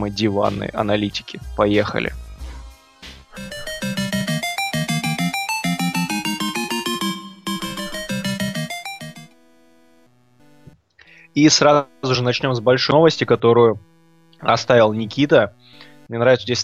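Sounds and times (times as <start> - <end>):
speech: 0.0 - 2.2, 11.4 - 16.6
bright podcast segment transition jingle of bouncy synth notes over a pulsing beat: 3.4 - 9.3.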